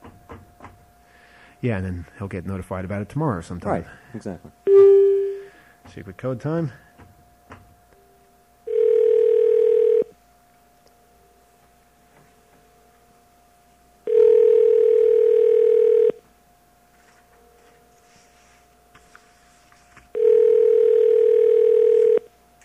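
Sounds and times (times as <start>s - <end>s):
faint constant telephone line hum: 0.0s - 22.6s
speech: 1.6s - 4.8s, 5.9s - 6.9s
telephone call tones going to voicemail: 4.7s - 5.5s, 8.6s - 10.2s, 14.0s - 16.2s, 20.1s - 22.3s.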